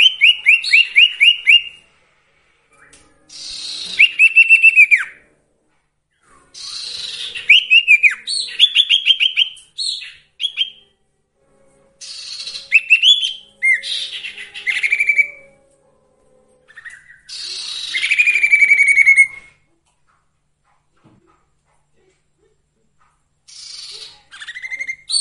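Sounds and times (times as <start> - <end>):
sirtu song with descending trills and sweeping whistled phrases: 0.0 - 1.8, 2.7 - 5.3, 6.2 - 11.0, 12.0 - 15.7, 16.6 - 19.6, 23.5 - 25.1.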